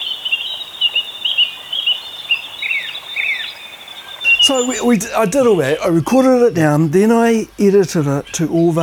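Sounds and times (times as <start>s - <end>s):
finch singing: 0.0s - 5.9s
speech: 4.5s - 8.8s.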